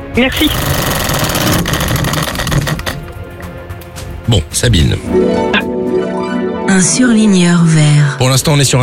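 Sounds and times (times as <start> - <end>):
speech: 0.2 - 1.8, 4.3 - 6.1, 6.7 - 8.8
game show prize wheel spinning with rapid ratcheting clicks: 0.3 - 3.2.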